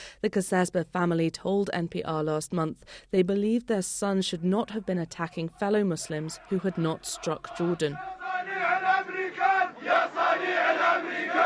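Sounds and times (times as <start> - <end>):
speech: 0.2 - 11.4
crowd shouting and chanting at a street gathering: 6.0 - 11.4.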